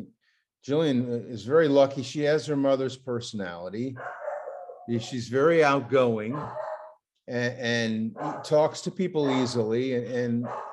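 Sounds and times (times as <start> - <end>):
speech: 0.6 - 4.2, 4.9 - 6.7, 7.3 - 10.7
dog giving a drawn-out downward-sliding bark: 4.0 - 5.2, 6.2 - 7.0, 8.2 - 10.7.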